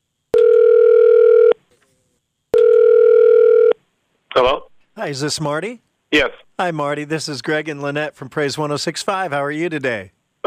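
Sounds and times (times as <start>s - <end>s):
telephone ringing tone: 0.3s - 1.6s, 2.5s - 3.8s
speech: 4.4s - 10.4s.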